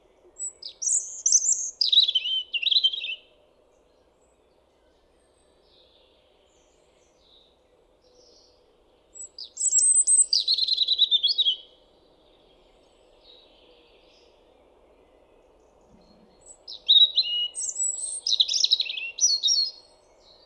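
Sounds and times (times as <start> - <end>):
European robin Erithacus rubecula singing: 0.2 - 3.3, 9.1 - 11.8, 15.2 - 20.4.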